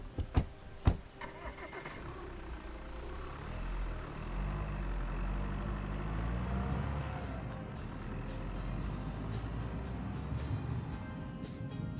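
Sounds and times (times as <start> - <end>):
car door clicks: 0.1 - 1.4
limousine engine starting and driving off: 0.4 - 11.6.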